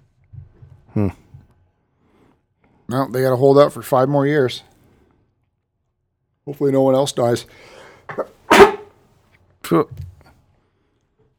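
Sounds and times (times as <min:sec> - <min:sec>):
speech: 0:01.0 - 0:01.2, 0:02.9 - 0:04.7, 0:06.4 - 0:08.3, 0:09.7 - 0:10.1
brief intake of breath: 0:07.5 - 0:08.1
sneeze: 0:08.1 - 0:08.9.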